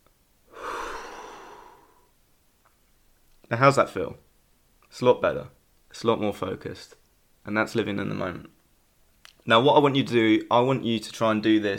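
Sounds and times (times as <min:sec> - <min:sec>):
slow soft breath: 0:00.5 - 0:02.2
speech: 0:03.5 - 0:04.3, 0:04.9 - 0:08.6, 0:09.5 - 0:11.7.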